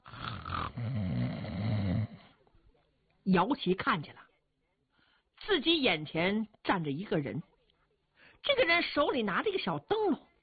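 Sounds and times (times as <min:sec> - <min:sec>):
male storyteller imitating snoring: 0:00.0 - 0:02.4
speech: 0:03.3 - 0:04.3, 0:05.4 - 0:07.5, 0:08.4 - 0:10.3.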